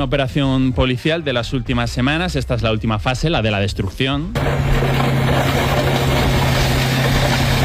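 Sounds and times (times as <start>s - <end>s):
speech: 0.0s - 6.0s
heavy excavator engine droning while crushing stacked motorcycles: 4.3s - 7.6s.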